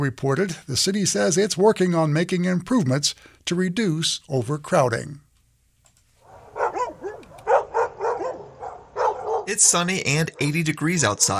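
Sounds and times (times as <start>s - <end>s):
speech: 0.0s - 5.2s, 9.5s - 11.3s
dogs barking in outside kennels at an animal shelter: 6.2s - 9.6s.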